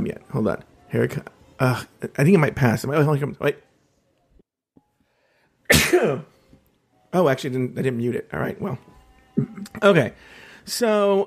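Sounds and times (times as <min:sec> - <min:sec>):
speech: 0:00.2 - 0:03.7, 0:05.9 - 0:06.3, 0:07.1 - 0:11.2
person sneezing: 0:05.7 - 0:06.3.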